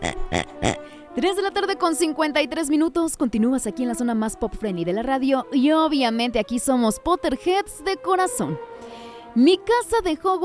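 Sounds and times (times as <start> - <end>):
pig oinks: 0.0 - 0.8
speech: 0.3 - 10.4.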